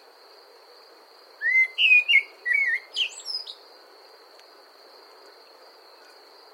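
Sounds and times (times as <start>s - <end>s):
Common blackbird singing: 1.4s - 3.6s.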